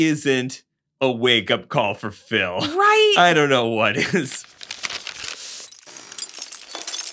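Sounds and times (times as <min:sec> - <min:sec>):
speech: 0:00.0 - 0:04.6
tinkling glass shards: 0:05.1 - 0:07.1
window glass shattering as someone crashes through it: 0:05.2 - 0:07.1.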